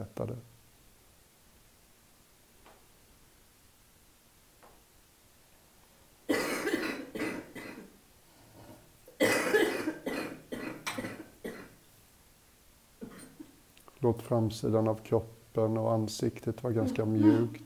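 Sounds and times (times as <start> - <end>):
speech: 0.1 - 0.5, 14.0 - 17.6
harsh barking coughs: 6.3 - 7.9, 9.2 - 11.8.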